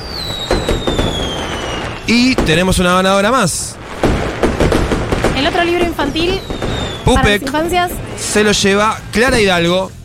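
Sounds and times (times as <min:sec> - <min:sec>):
whistling hiss: 0:00.0 - 0:02.4, 0:06.4 - 0:07.3
digital fireworks sound effect popping: 0:00.0 - 0:09.6
speech: 0:02.1 - 0:03.8, 0:05.4 - 0:10.0.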